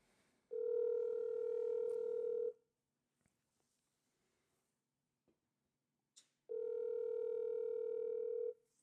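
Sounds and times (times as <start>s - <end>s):
telephone ringback tone of a call being placed: 0.5s - 2.6s, 6.5s - 8.6s.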